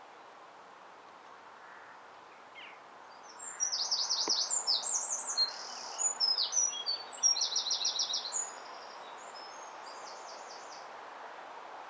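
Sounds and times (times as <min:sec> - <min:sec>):
faint background hiss: 0:00.0 - 0:11.8
Eurasian wren Troglodytes troglodytes singing buzzy trills: 0:03.1 - 0:10.8.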